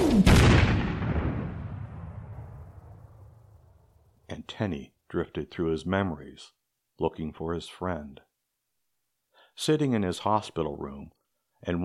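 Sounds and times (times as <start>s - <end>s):
heavy explosion with long rumbling decay: 0.0s - 3.7s
speech: 4.5s - 8.3s, 9.6s - 11.8s.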